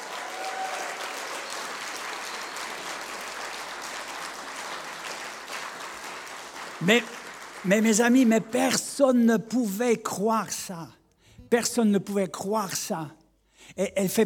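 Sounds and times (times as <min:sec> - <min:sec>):
audience applause at a religious gathering: 0:00.0 - 0:08.3
speech: 0:06.8 - 0:14.2.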